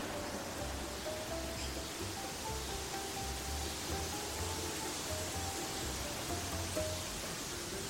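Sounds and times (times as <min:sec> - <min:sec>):
faint low rumble: 0:00.0 - 0:03.5
wind rustling oiti tree leaves: 0:00.0 - 0:07.8.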